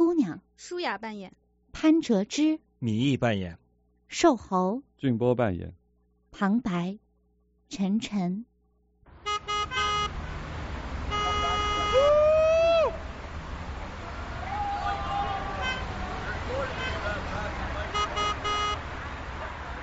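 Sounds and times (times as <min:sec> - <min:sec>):
speech: 0:00.3 - 0:07.0, 0:07.7 - 0:08.5
busy city street traffic at nightfall: 0:09.1 - 0:19.8
car horns honking: 0:09.1 - 0:19.8
indistinct voices: 0:14.0 - 0:18.6.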